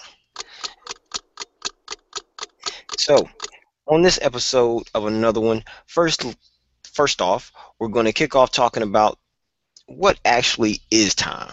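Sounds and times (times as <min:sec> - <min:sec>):
clock ticking: 0:00.0 - 0:05.0
speech: 0:03.0 - 0:09.2, 0:09.9 - 0:11.5.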